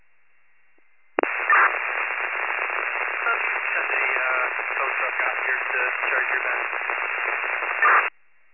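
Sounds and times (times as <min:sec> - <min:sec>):
static-heavy radio transmission hiss: 0:01.2 - 0:08.1.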